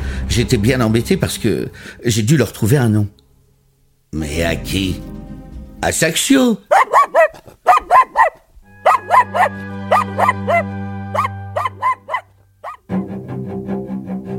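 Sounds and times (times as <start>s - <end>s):
speech: 0.4s - 3.2s, 4.1s - 5.1s, 5.8s - 7.6s, 9.1s - 10.8s
small poodle barking high-pitched: 6.7s - 12.9s.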